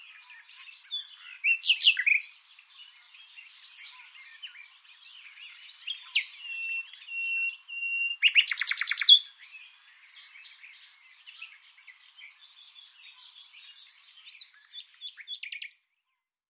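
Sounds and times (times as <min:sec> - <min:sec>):
common nightingale Luscinia megarhynchos song with trills and chatter: 0:00.0 - 0:16.2.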